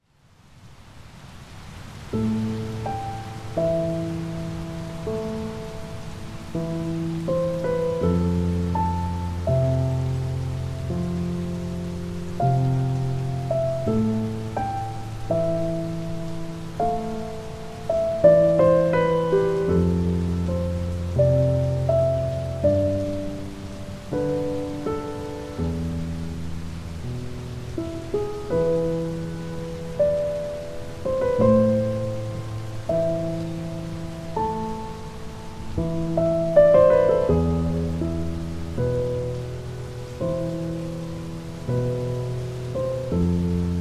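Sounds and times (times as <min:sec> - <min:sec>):
calming piano music: 0:01.6 - 0:43.7.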